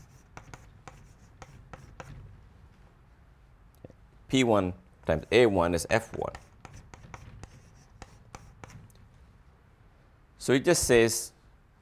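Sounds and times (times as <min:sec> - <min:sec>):
scratchy writing strokes: 0:00.0 - 0:02.3, 0:06.0 - 0:08.9
speech: 0:04.3 - 0:06.5, 0:10.4 - 0:11.4.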